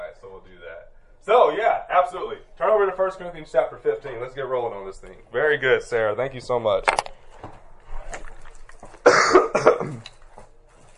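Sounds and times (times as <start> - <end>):
speech: 1.5 - 7.1
person coughing harshly: 9.0 - 10.1
throat-clearing rasp: 9.0 - 10.2.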